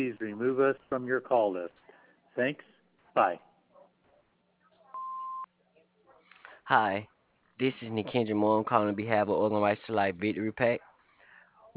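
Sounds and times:
speech: 0:00.0 - 0:03.5, 0:06.7 - 0:10.9
answering machine beep: 0:05.0 - 0:05.5.

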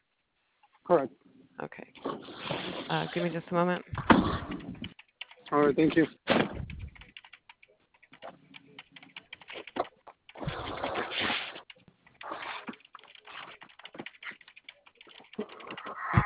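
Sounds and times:
speech: 0:00.9 - 0:04.5, 0:05.5 - 0:06.5
typing on a computer keyboard: 0:04.4 - 0:06.0, 0:06.7 - 0:16.1.

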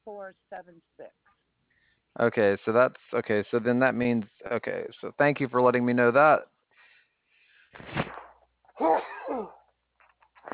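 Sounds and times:
speech: 0:00.1 - 0:01.4, 0:02.2 - 0:06.5, 0:08.8 - 0:09.6
person sneezing: 0:08.8 - 0:09.7.

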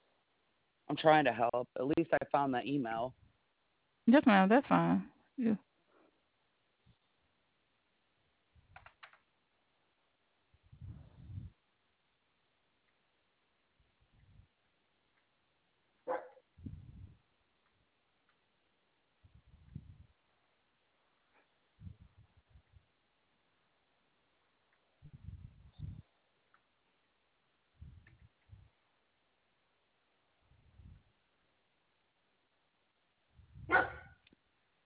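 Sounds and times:
speech: 0:00.9 - 0:03.2, 0:04.0 - 0:05.7
dog barking: 0:16.1 - 0:16.4, 0:33.7 - 0:34.2.

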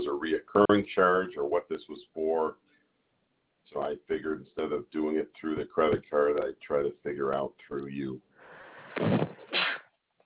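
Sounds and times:
speech: 0:00.4 - 0:02.7, 0:03.7 - 0:08.3, 0:09.0 - 0:09.3
person sneezing during a telephone call: 0:09.0 - 0:09.8.

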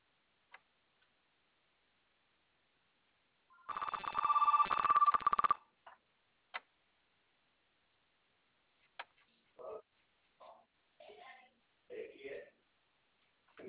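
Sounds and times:
faint clicks and taps: 0:00.5 - 0:01.2, 0:08.8 - 0:09.4
home telephone bell ringing in a rapid trill: 0:03.5 - 0:05.6.

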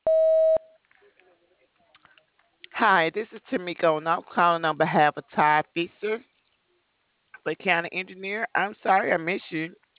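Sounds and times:
voicemail beep before leaving a message: 0:00.0 - 0:00.8
speech: 0:02.8 - 0:06.3, 0:07.4 - 0:09.8.

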